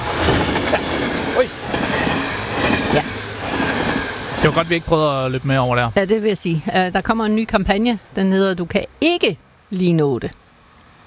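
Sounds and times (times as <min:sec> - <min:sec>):
train wheel squeals: 0:00.0 - 0:05.4
train rumbling past at a railway level crossing: 0:00.0 - 0:08.4
speech: 0:04.4 - 0:10.4.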